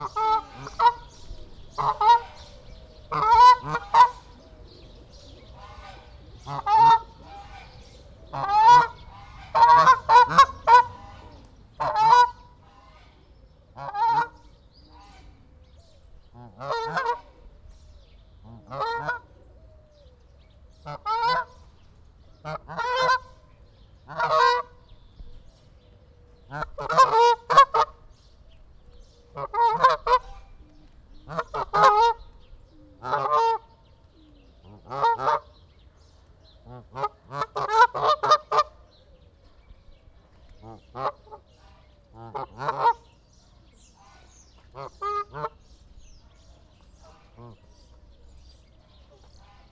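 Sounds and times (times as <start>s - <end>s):
subdued Canada goose at Debrecen zoo: 0.0s - 15.4s, 16.3s - 17.4s, 18.5s - 19.4s, 20.8s - 21.7s, 22.4s - 24.8s, 26.5s - 28.2s, 29.3s - 30.6s, 31.2s - 33.8s, 34.7s - 35.7s, 36.6s - 38.8s, 40.5s - 43.2s, 43.8s - 45.8s.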